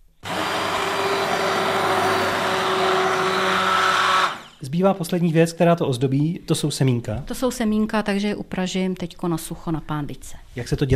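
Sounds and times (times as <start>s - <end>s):
immersion blender pureeing soup: 0.0s - 4.6s
speech: 4.8s - 10.9s.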